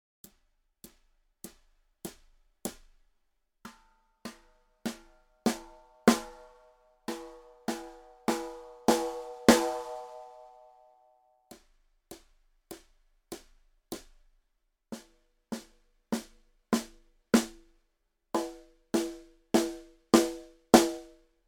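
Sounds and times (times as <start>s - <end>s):
snare drum played with birch rutes: 4.3s - 10.4s, 15.0s - 17.7s, 18.4s - 21.2s.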